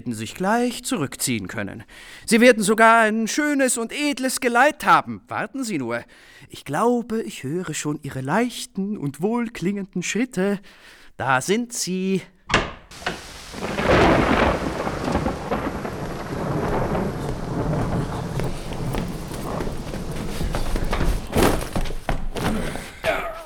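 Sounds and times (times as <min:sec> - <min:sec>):
speech: 0:00.0 - 0:13.1
rain: 0:12.9 - 0:21.6
thunder: 0:12.9 - 0:21.8.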